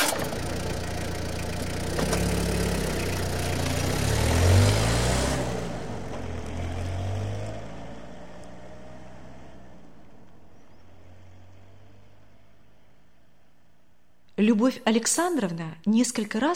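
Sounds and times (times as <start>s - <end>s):
car engine starting and revving as it pulls away: 0.0s - 12.9s
speech: 14.4s - 16.5s.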